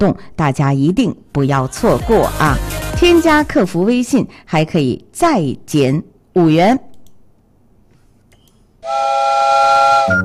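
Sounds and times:
speech: 0.0 - 6.9, 8.8 - 10.2
train whistle blowing as the train departs: 8.8 - 10.2.

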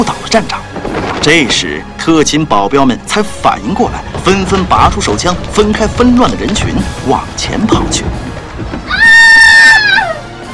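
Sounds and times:
speech: 0.0 - 8.3
woman's piercing scream: 8.9 - 10.2.

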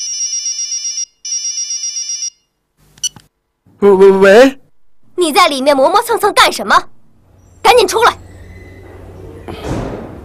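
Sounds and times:
mobile phone ringing with a shrill pulsing electronic ringtone: 0.0 - 2.5
speech: 3.8 - 4.6, 5.2 - 7.0, 7.6 - 8.2.

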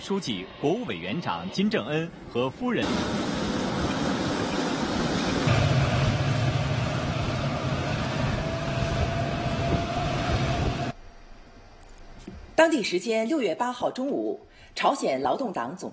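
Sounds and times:
special plane arriving at an airport with a roar and low drone: 0.0 - 11.0
speech: 0.1 - 3.5, 12.6 - 15.9.

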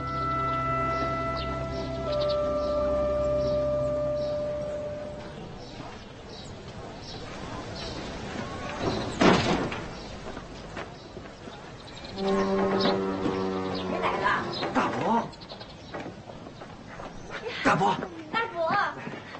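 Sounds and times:
voices talking: 0.0 - 19.3
footsteps: 5.0 - 19.3
door creaking as it swings: 12.1 - 15.2.

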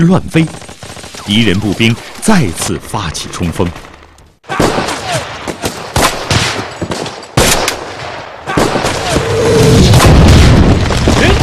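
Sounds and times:
speech: 0.0 - 0.6, 1.3 - 3.9
bombs dropped from aircraft exploding on a battlefield: 4.6 - 11.4.

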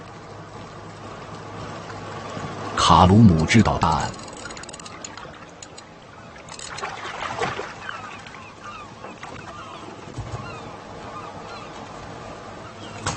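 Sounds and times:
water wash around a fishing boat: 0.0 - 8.4
fishing boat engine: 0.0 - 13.1
seagulls calling and squawking around a fishing boat: 1.7 - 13.1
speech: 2.8 - 4.2.

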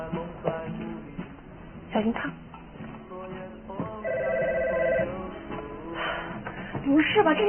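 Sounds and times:
speech: 2.0 - 2.5, 6.9 - 7.4
landline telephone ringing in an electronic burst: 4.0 - 5.2.

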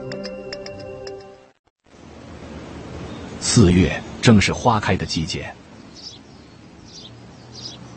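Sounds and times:
sparrows chirping on tree branches: 2.8 - 7.9
speech: 3.5 - 5.6.

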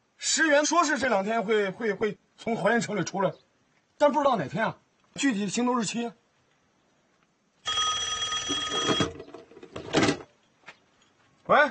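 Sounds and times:
speech: 0.4 - 6.2, 11.5 - 11.6
old-style telephone bell ringing: 7.6 - 9.2.

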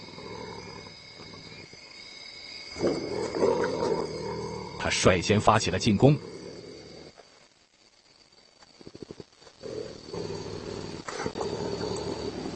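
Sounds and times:
African civet growling threateningly: 0.0 - 1.8, 2.6 - 7.2, 9.0 - 12.5
narrator talking: 4.8 - 6.3
speech: 4.8 - 6.3.

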